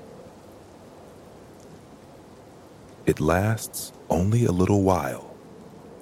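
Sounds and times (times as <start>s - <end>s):
gentle rain falling: 0.0s - 6.0s
speech: 3.1s - 5.3s.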